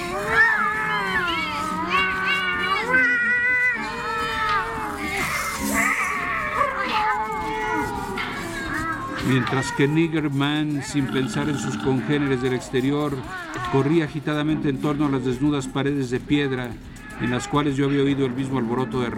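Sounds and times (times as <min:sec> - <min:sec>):
several cats yowling and meowing: 0:00.0 - 0:09.8
speech: 0:09.3 - 0:19.1.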